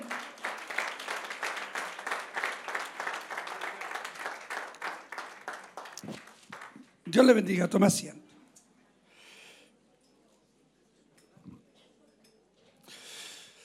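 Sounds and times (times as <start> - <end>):
crowd applause in a large room: 0.0 - 7.0
speech: 7.1 - 8.2.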